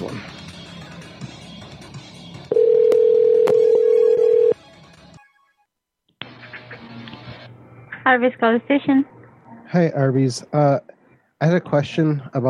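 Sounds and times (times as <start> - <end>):
telephone dialing tones on a prank call: 2.5 - 4.6
speech: 8.1 - 9.1, 9.7 - 12.4.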